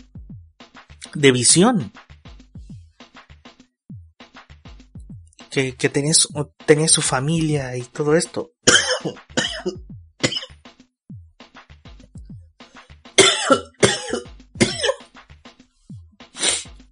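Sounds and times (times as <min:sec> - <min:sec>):
speech: 0:01.0 - 0:02.0, 0:05.6 - 0:10.0
harsh hacking coughs: 0:08.7 - 0:10.5, 0:13.2 - 0:15.1
throat clearing: 0:08.7 - 0:10.5, 0:13.2 - 0:15.0.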